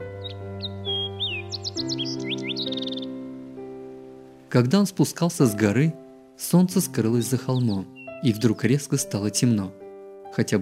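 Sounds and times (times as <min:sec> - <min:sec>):
small bird singing: 0:00.0 - 0:03.7, 0:06.5 - 0:09.8
speech: 0:04.5 - 0:10.6.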